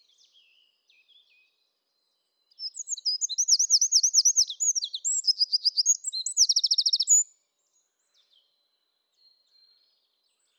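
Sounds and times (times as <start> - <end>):
Eurasian wren singing: 2.6 - 7.2.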